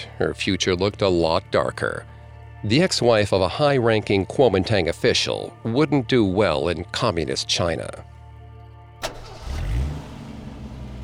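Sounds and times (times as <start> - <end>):
speech: 0.2 - 8.1
car engine cranking and starting: 9.0 - 11.0.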